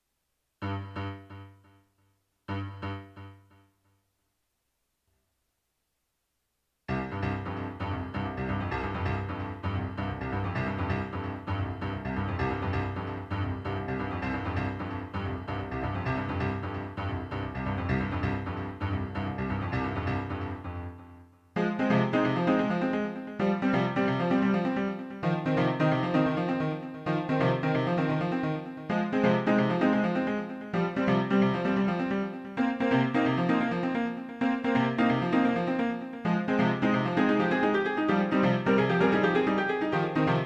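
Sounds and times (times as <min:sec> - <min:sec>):
piano with delay effect: 0:02.5 - 0:03.7, 0:06.9 - 0:40.4.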